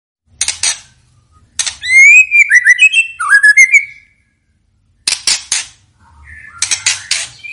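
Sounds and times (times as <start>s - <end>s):
white-rumped shama whistling bright sliding notes: 1.8s - 4.2s, 6.2s - 7.5s.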